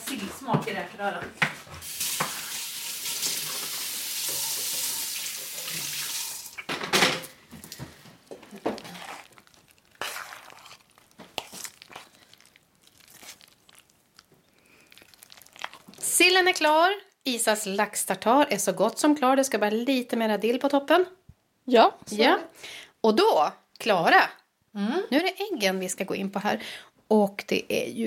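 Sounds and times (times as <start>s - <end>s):
speech: 0.2s - 2.0s, 16.4s - 28.0s
running tap water: 1.8s - 6.7s
dishes clattering during washing up: 6.4s - 7.4s
crockery clinking and knocking: 6.5s - 7.4s.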